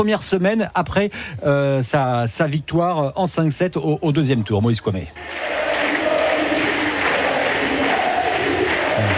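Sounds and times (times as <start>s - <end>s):
speech: 0.0s - 5.8s
large tennis stadium crowd chanting a player's name: 5.2s - 9.1s
rhythmic shouted calls: 5.2s - 9.1s.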